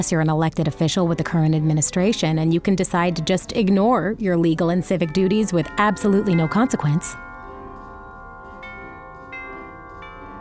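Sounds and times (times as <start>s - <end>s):
speech: 0.0s - 7.2s
doorbell chime ringing: 4.9s - 10.3s.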